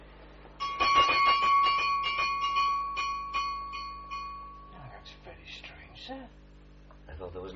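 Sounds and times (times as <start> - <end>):
small electric room call bell in a building ringing: 0.6 - 4.9.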